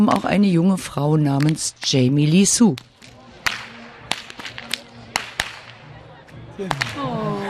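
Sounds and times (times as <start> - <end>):
speech: 0.0 - 2.9, 6.6 - 7.3
crowd murmuring: 2.3 - 7.4
Pentecost whip cracking: 2.7 - 5.8, 6.7 - 7.1.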